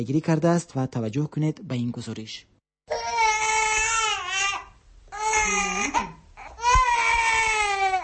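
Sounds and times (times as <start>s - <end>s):
speech: 0.0s - 2.5s
newborn baby girl wailing: 2.9s - 8.0s.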